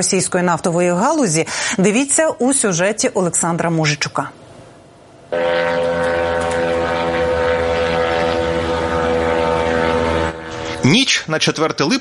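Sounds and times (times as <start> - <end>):
speech: 0.0 - 4.4, 5.3 - 5.6, 10.8 - 11.9
attack drone propeller engine flying overhead during a night attack: 5.3 - 11.4.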